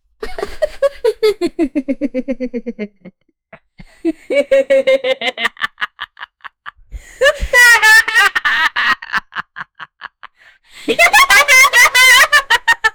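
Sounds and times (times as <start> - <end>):
person laughing manically in character voices: 0.2 - 12.9.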